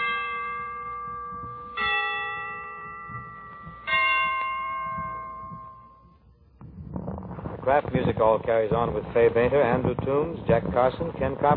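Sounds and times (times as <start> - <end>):
Christmas church bells ringing: 0.0 - 6.4
faint low rumble: 0.0 - 11.5
speech: 7.7 - 11.5.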